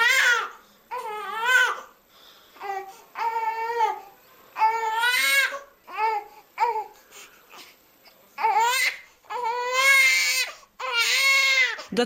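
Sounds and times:
infant crying: 0.0s - 1.9s, 2.6s - 7.7s, 8.4s - 11.9s.

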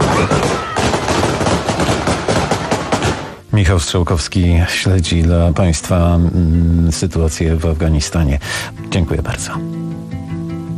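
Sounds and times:
gunfire shot into the air to disperse a demonstration: 0.0s - 3.4s
speech: 3.6s - 9.8s.

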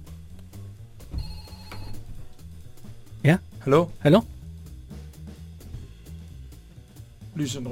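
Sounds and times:
unplugged telephone ringing electronically in a studio: 1.2s - 2.0s
speech: 3.2s - 4.3s, 7.4s - 7.7s.

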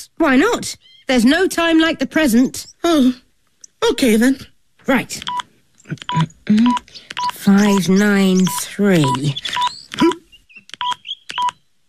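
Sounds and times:
speech: 0.0s - 3.2s, 3.8s - 10.2s
phone keypad tones as a number is dialed: 6.0s - 11.6s.

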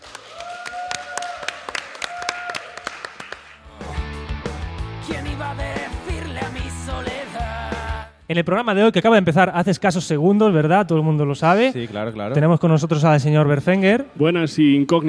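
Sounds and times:
audience applause at a live multimedia event in a university computing faculty: 0.0s - 3.8s
music: 3.6s - 8.3s
speech: 8.3s - 15.0s.

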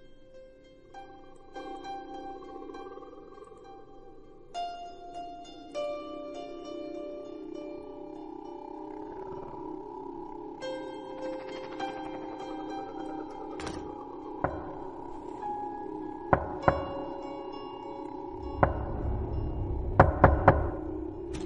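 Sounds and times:
steady droning tonal background: 0.0s - 21.4s
knocking on a door from outside at night in a village: 16.4s - 17.1s, 19.9s - 20.8s.

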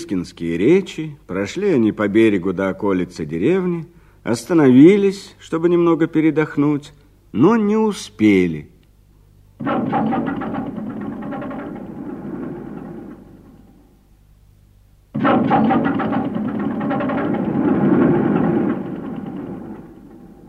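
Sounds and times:
speech: 0.1s - 8.7s, 9.6s - 10.5s
large tractor engine cranking but failing to start: 9.6s - 14.0s, 15.2s - 20.4s.

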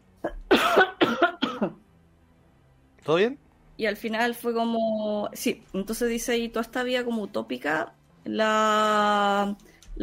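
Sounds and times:
person coughing: 0.2s - 1.8s
speech: 3.1s - 10.0s.

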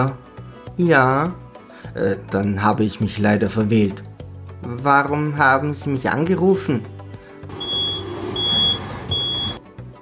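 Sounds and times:
speech: 0.0s - 0.2s, 0.8s - 6.9s
truck reversing beeps: 7.5s - 9.6s.

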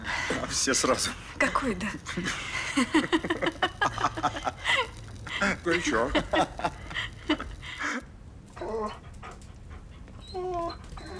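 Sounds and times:
speech: 0.5s - 6.7s
laughter: 2.1s - 8.1s
dog whimpering: 8.6s - 9.1s, 10.2s - 11.1s
dog panting beside a fireplace: 8.6s - 11.1s.

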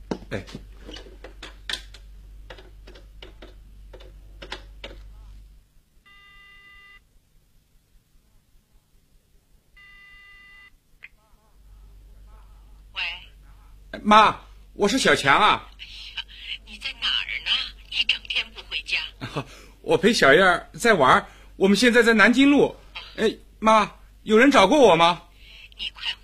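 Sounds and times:
speech: 0.3s - 1.1s, 14.1s - 15.8s, 19.4s - 25.2s
telephone ringing tone: 6.1s - 7.0s, 9.8s - 10.7s.

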